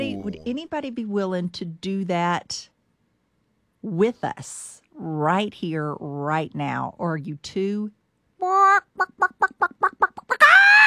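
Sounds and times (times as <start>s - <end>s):
speech: 0.0s - 2.7s, 3.8s - 10.8s
chicken squawking: 8.4s - 10.8s
chicken clucking: 8.5s - 10.4s.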